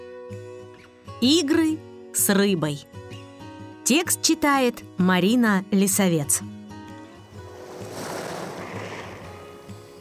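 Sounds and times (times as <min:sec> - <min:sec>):
speech: 0:01.2 - 0:03.0, 0:03.9 - 0:06.6
sea waves washing over pebbles: 0:07.4 - 0:09.6.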